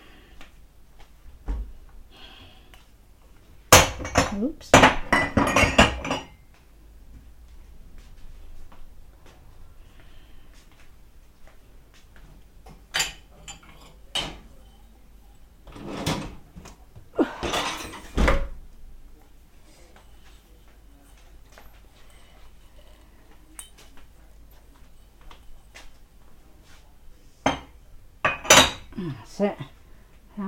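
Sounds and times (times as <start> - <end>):
ceramic cups set down inside a cupboard: 3.8 - 6.4, 12.7 - 26.8, 27.4 - 28.9
speech: 4.4 - 4.9, 29.1 - 29.7
quiet rustling: 6.5 - 28.1.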